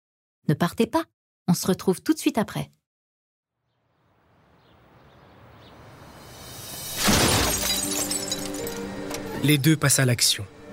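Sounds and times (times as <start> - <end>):
speech: 0.5 - 2.8, 9.4 - 10.6
glass fragments of car window tinkling and scattering: 6.7 - 9.1
car driver-side window smashed by thieves breaking in: 6.9 - 9.2.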